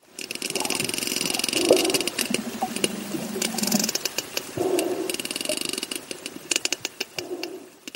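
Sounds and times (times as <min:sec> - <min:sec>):
mouth clicks imitating sperm whale echolocation: 0:00.2 - 0:07.9.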